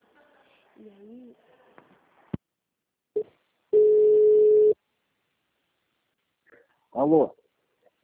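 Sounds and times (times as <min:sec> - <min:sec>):
speech: 0:00.8 - 0:01.6, 0:07.0 - 0:07.4
telephone busy tone after a dropped call: 0:03.8 - 0:04.8.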